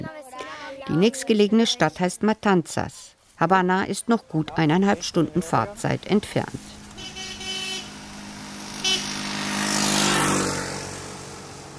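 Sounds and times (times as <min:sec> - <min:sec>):
steady road hum: 0:00.0 - 0:11.7
speech: 0:00.9 - 0:07.1
car driving past fields on an open road: 0:06.4 - 0:11.7.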